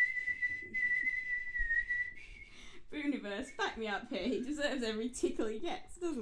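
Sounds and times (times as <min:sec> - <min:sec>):
person whistling one sustained high note: 0:00.0 - 0:02.7
speech: 0:03.0 - 0:06.2.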